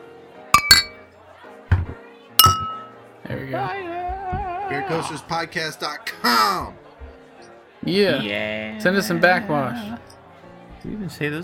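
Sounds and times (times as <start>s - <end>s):
glasses clinking in a toast: 0.6s - 1.0s, 2.4s - 2.9s
speech: 3.3s - 6.8s, 7.8s - 10.1s, 10.8s - 11.4s.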